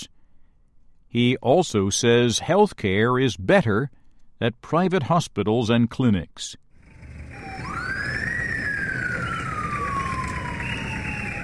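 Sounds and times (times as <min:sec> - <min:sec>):
speech: 0:01.1 - 0:06.6
ambulance siren wailing on arrival at Yaoundé Central Hospital: 0:06.8 - 0:11.4
steady low rumble of ambulance engine and street noise: 0:06.8 - 0:11.4.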